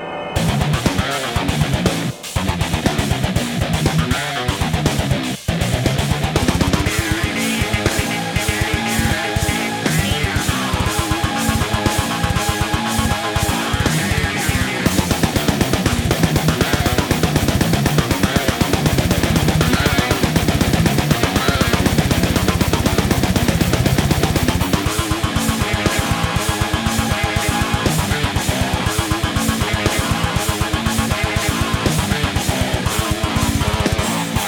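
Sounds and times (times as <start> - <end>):
short instrumental metal track: 0.1 - 34.4.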